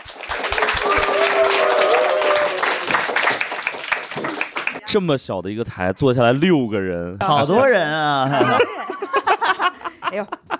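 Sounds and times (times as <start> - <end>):
live audience applause: 0.0 - 4.8
faint voice or cheer: 0.4 - 3.2
speech: 4.9 - 9.2, 10.1 - 10.4
laughter: 8.2 - 10.5.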